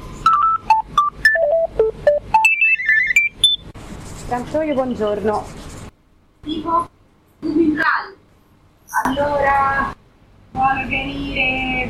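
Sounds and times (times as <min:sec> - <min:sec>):
telephone electronic ringtone melody: 0:00.3 - 0:03.7
speech: 0:04.3 - 0:05.6, 0:06.4 - 0:08.0, 0:09.1 - 0:10.0, 0:10.7 - 0:11.8.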